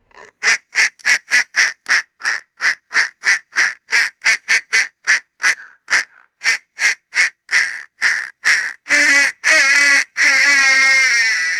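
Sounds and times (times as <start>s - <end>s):
raspy toy duck call honks: 0.0s - 11.5s.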